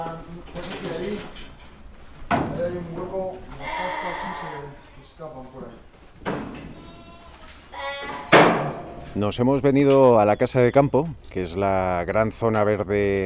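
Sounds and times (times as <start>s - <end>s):
speech: 2.3s - 6.9s, 9.1s - 13.2s
flock of sheep and lambs bleating: 3.5s - 5.0s, 6.7s - 8.4s.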